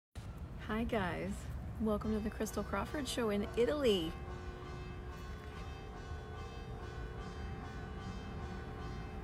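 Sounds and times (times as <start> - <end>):
speech: 0.7 - 4.2
church bells ringing: 1.8 - 9.2.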